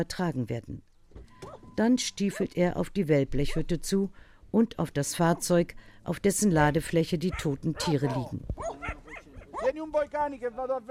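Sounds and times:
speech: 0.0s - 0.9s, 1.8s - 8.7s, 9.6s - 10.8s
small shepherd's dogs yapping at a herd: 7.3s - 9.8s.

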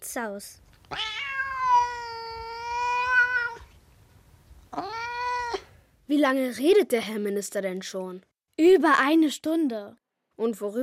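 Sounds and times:
speech: 0.0s - 1.2s, 6.1s - 10.8s
cat meowing: 0.9s - 3.7s, 4.7s - 5.7s.

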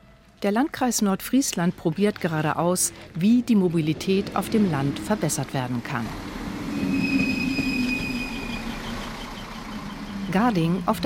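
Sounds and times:
speech: 0.4s - 6.4s, 10.3s - 11.0s
regional train carriages rumbling into a small station: 1.6s - 11.0s
regional train wheels squealing: 6.5s - 10.4s.

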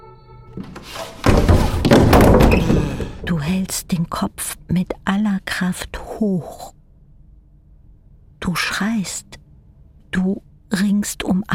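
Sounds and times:
speech: 0.5s - 1.2s, 2.6s - 6.8s, 8.4s - 9.4s, 10.1s - 11.5s
fists pounding on a floor: 0.6s - 3.0s
faint hum: 2.9s - 11.5s.

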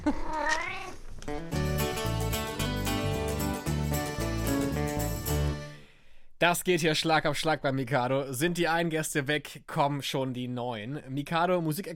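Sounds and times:
speech: 0.0s - 0.4s, 6.4s - 11.9s
cat meowing: 0.2s - 1.0s
bright steady music: 1.4s - 5.9s.

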